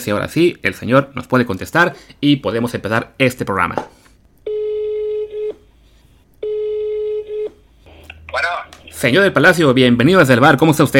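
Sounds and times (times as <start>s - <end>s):
speech: 0.0s - 4.0s, 8.4s - 10.9s
telephone ringing tones of a redialed call: 4.4s - 5.6s, 6.4s - 7.6s.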